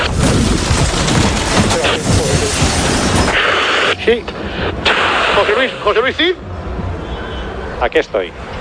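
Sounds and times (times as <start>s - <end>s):
loud chaotic helicopter crash: 0.0s - 6.2s
speech: 4.1s - 4.4s, 5.6s - 6.5s, 7.8s - 8.4s.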